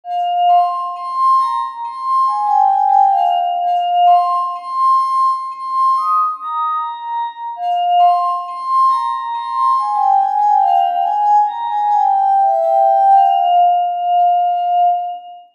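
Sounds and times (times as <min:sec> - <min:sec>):
glass harmonica: 0:00.1 - 0:15.5.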